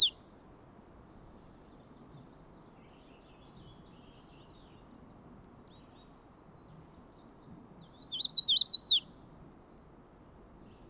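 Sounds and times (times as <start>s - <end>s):
Magnolia warbler singing rolling whistled notes: 0.0s - 0.2s, 1.0s - 9.1s.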